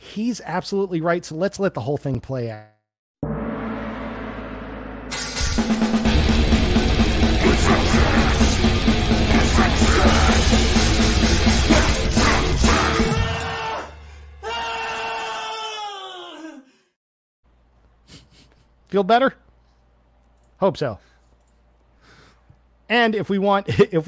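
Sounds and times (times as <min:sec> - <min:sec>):
speech: 0:00.2 - 0:02.8, 0:18.9 - 0:19.4, 0:20.6 - 0:21.1, 0:22.9 - 0:24.0
loud chaotic burst of noise: 0:03.2 - 0:12.8
person's drawn-out scream sliding downward in pitch: 0:07.4 - 0:08.5, 0:09.3 - 0:10.5, 0:11.9 - 0:16.7.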